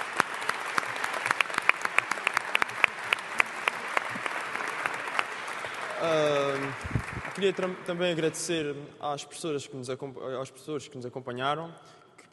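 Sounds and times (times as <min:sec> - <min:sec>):
crowd applauding: 0:00.0 - 0:08.3
speech: 0:07.4 - 0:12.3.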